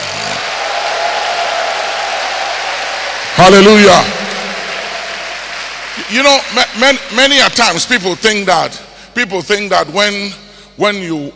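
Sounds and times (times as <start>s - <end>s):
congregation clapping and cheering: 0.0s - 8.4s
speech: 3.4s - 4.2s, 6.1s - 11.3s.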